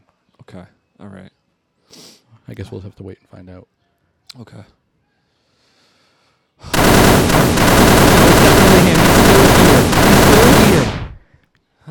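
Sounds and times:
speech: 0:00.5 - 0:01.3, 0:02.5 - 0:04.8
full automatic gunfire during a robbery: 0:06.7 - 0:11.2.

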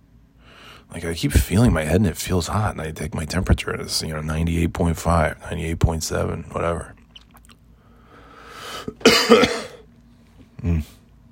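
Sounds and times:
speech: 0:00.9 - 0:07.0, 0:09.0 - 0:09.6
harsh raspy coughing fit: 0:08.8 - 0:09.9.

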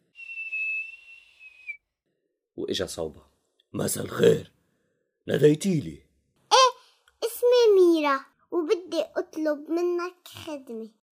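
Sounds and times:
person whistling to call a wolf from a mountain top: 0:00.0 - 0:01.8
speech: 0:02.6 - 0:04.6, 0:05.3 - 0:06.0, 0:08.1 - 0:11.0.

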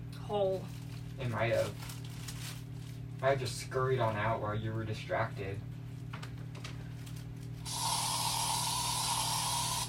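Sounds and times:
speech: 0:00.3 - 0:02.0, 0:03.2 - 0:05.7
aerosol insecticide spray hissing: 0:07.7 - 0:09.8.

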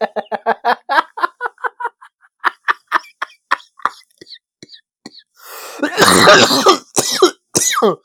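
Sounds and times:
laughter: 0:00.0 - 0:04.4
loud coughing fit: 0:03.8 - 0:08.0.

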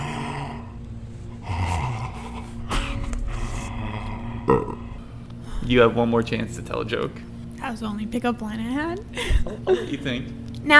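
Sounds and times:
voice imitating clown's heavy raspy breathing: 0:00.0 - 0:06.0
speech: 0:04.5 - 0:04.8, 0:05.6 - 0:10.7
laughter: 0:09.1 - 0:10.2.

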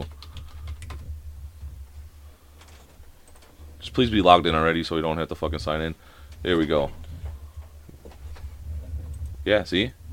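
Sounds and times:
fingers typing on a computer keyboard: 0:00.0 - 0:01.1
low steady hum: 0:00.0 - 0:10.1
speech: 0:03.9 - 0:07.0, 0:09.5 - 0:10.0.

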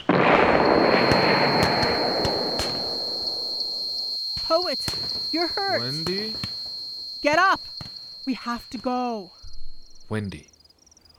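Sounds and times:
gunfire in a battle scene: 0:00.0 - 0:03.3
steady high whine: 0:00.0 - 0:10.2
speech: 0:04.7 - 0:06.5, 0:07.2 - 0:09.4, 0:10.1 - 0:10.5.

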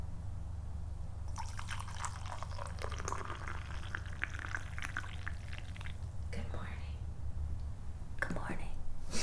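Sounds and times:
low steady hum: 0:00.0 - 0:09.2
coffee pouring from a French press: 0:01.2 - 0:06.3.

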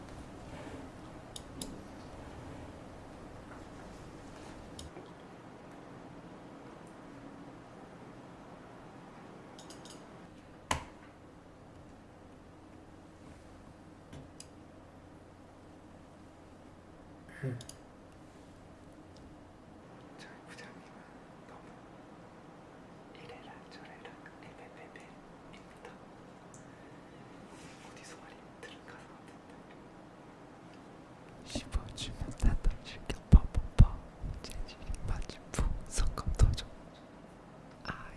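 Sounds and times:
low steady hum: 0:00.0 - 0:38.1
computer mouse clicking: 0:01.3 - 0:01.8, 0:09.6 - 0:10.0.

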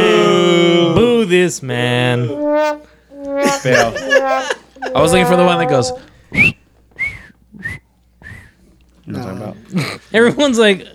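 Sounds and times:
person whistling a calling tune: 0:00.0 - 0:00.4, 0:02.3 - 0:06.0
speech: 0:01.3 - 0:02.8, 0:03.6 - 0:06.6, 0:09.1 - 0:10.9.

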